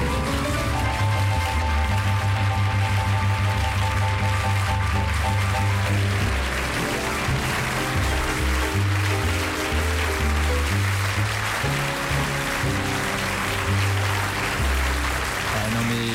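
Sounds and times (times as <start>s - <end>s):
dense steady applause after a popular French song: 0.0s - 16.1s
low musical line: 0.0s - 16.1s.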